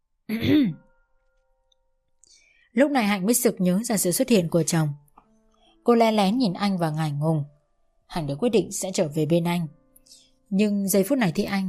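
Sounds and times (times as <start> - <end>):
man clearing his throat: 0.3 - 0.8
speech: 0.3 - 0.8, 2.8 - 5.0, 5.8 - 7.5, 8.1 - 11.6.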